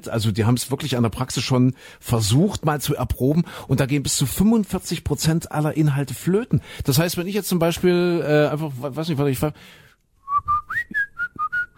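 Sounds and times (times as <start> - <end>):
speech: 0.0 - 9.9
person whistling a song: 10.2 - 11.7.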